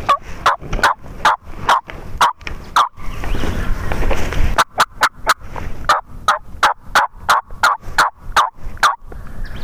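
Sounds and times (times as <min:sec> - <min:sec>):
wild turkeys gobbling outdoors in a creek bottom: 0:00.1 - 0:03.2, 0:04.6 - 0:09.0.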